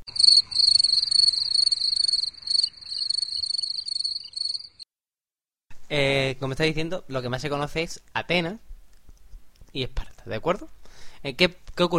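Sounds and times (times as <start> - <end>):
crickets chirping in rapid pulsing high-pitched trills: 0.0 - 4.8
speech: 5.9 - 8.7, 9.8 - 11.9.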